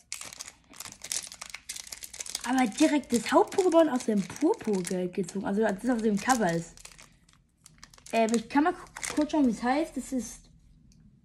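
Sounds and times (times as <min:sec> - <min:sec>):
foil trading card booster pack wrapper crinkling and tearing: 0:00.0 - 0:09.6
speech: 0:02.4 - 0:06.8, 0:08.1 - 0:10.4.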